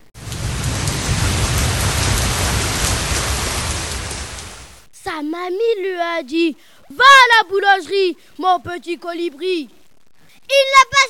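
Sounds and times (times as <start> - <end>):
steady dense rain pouring: 0.0 - 4.9
speech: 5.2 - 9.8, 10.5 - 11.0.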